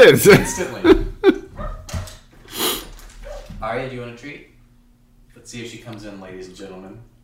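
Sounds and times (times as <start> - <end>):
speech: 0.0 - 1.0, 3.6 - 4.6, 5.4 - 7.1
laughter: 0.0 - 1.6
female dog barking at a door: 1.6 - 2.1, 3.2 - 3.6.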